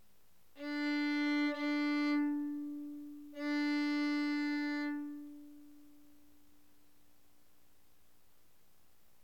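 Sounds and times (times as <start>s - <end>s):
violin playing D: 0.6s - 6.3s.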